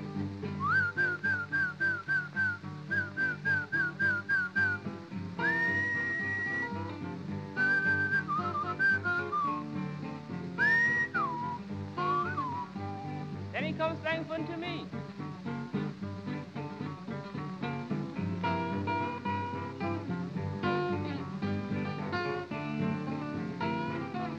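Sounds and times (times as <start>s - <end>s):
steady instrumental backing: 0.0s - 24.3s
person whistling a lilting tune to call a horse: 0.6s - 6.8s, 7.6s - 9.6s, 10.6s - 13.3s.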